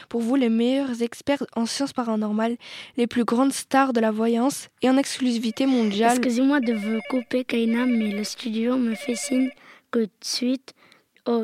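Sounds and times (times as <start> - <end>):
speech: 0.1 - 11.4
telephone ringing with an incoming call in electronic bursts: 5.4 - 9.6.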